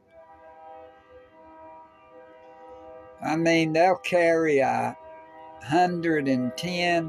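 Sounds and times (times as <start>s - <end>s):
freight train horn blaring: 0.0s - 7.0s
freight train rumbling past: 3.2s - 5.0s, 5.6s - 7.0s
speech: 3.2s - 5.0s, 5.6s - 7.0s.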